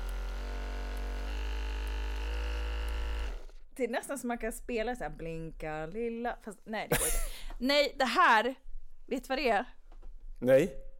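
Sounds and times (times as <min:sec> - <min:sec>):
percussive massage gun buzzing: 0:00.0 - 0:03.7
speech: 0:03.8 - 0:09.8, 0:10.4 - 0:10.9.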